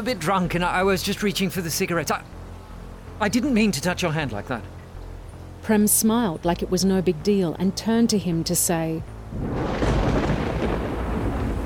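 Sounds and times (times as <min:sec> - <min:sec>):
speech: 0:00.0 - 0:02.4, 0:03.2 - 0:04.8, 0:05.6 - 0:09.8
loud rolling thunder: 0:09.4 - 0:11.6.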